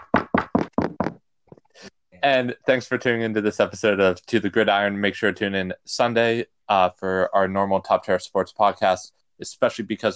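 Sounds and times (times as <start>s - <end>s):
knocking on wood: 0.0s - 1.2s
speech: 1.8s - 10.1s.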